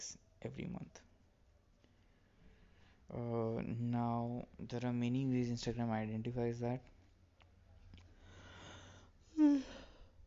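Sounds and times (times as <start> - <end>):
speech: 0.0 - 1.0, 3.1 - 7.0
person yawning: 9.3 - 10.0.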